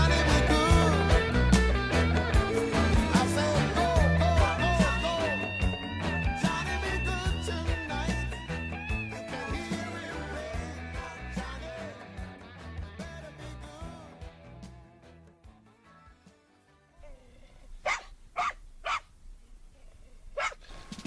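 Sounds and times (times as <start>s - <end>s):
music with rich harmonic tones: 0.0s - 17.0s, 20.7s - 21.0s
dog barks in a song: 17.8s - 19.1s, 20.4s - 20.7s.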